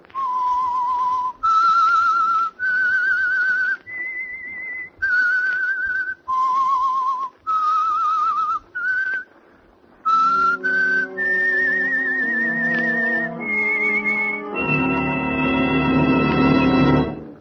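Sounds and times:
whistled signature melody: 0.1 - 9.3, 10.0 - 17.4
orchestra playing: 10.1 - 17.4.

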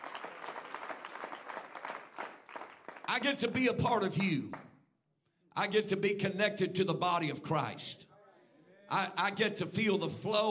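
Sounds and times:
audience clapping hands: 0.0 - 4.7
speech: 3.1 - 4.6, 5.6 - 8.1, 8.9 - 10.4.

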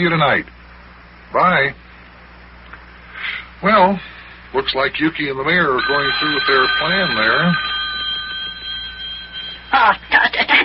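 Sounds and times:
speech: 0.0 - 0.6, 1.3 - 1.8, 3.6 - 7.7, 9.7 - 10.6
telephone ringing: 5.4 - 10.1.

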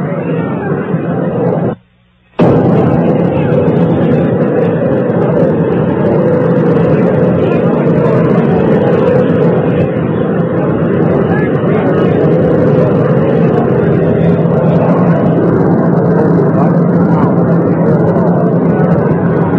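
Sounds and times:
army helicopter engine and rotors roaring: 0.0 - 1.8, 2.4 - 19.5.

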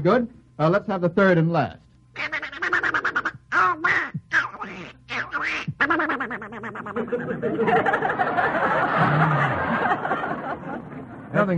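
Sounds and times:
speech: 0.0 - 2.4, 5.8 - 10.2, 11.4 - 11.5
person imitating a cartoon duck's quacking voice: 2.2 - 7.2
audience laughing: 6.3 - 11.5.

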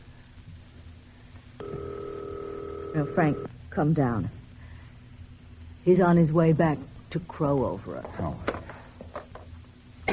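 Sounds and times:
low hum: 0.0 - 10.1
telephone ringing unanswered: 1.6 - 3.5
speech: 3.0 - 4.4, 5.8 - 8.5.

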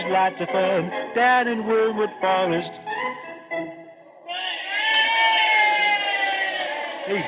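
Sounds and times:
speech: 0.1 - 2.9, 7.1 - 7.2
crowd roaring at a wrestling match: 4.2 - 7.2.

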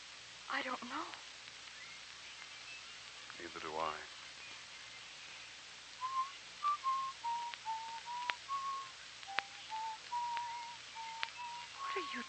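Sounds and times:
soft hiss: 0.0 - 12.2
speech: 0.5 - 1.4, 3.4 - 4.2, 12.0 - 12.2
faint clicks: 0.8 - 4.8, 7.2 - 12.2
person whistling a slow wandering tune: 6.0 - 12.2.

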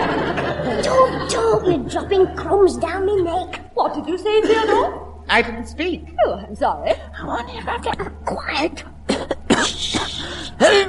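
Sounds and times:
laughter: 0.0 - 2.6, 4.3 - 5.1
speech: 1.6 - 8.9
loud sneeze with breathy voiced build-up gasps: 9.1 - 10.8.

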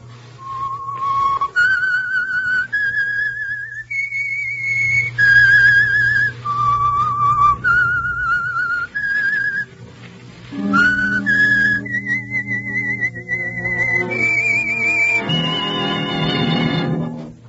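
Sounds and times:
low steady hum: 0.0 - 17.4
melancholy theme tune whistled solo: 0.3 - 9.8, 10.5 - 17.4
orchestral chord: 10.4 - 17.4.

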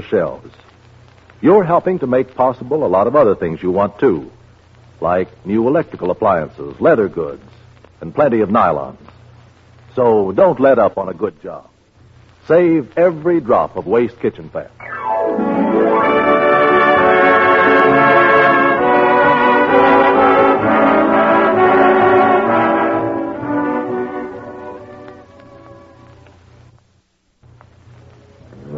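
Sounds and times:
speech: 0.0 - 0.7, 1.4 - 4.4, 5.0 - 9.1, 10.0 - 11.7, 12.5 - 15.7
deep loud foghorn blast: 14.8 - 26.2.

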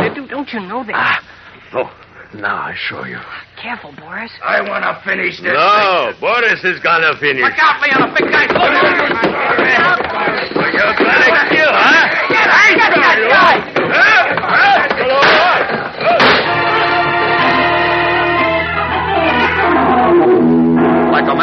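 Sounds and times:
speech: 0.3 - 15.2, 21.2 - 21.4
voices shouting: 7.4 - 20.4
crashes and thuds of a brawl with chair smash: 7.9 - 16.7
sharp gunshot-like bangs: 15.1 - 16.8
sustained dramatic musical chord: 16.3 - 21.4.

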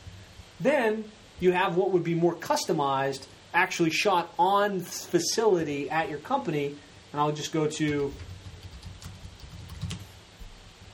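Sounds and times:
low hum: 0.0 - 10.9
speech: 0.6 - 8.3
typing on a computer keyboard: 7.9 - 10.0.

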